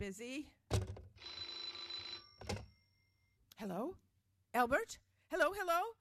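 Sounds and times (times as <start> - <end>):
speech: 0.0 - 0.8, 3.6 - 5.9
telephone bell ringing: 1.2 - 3.3.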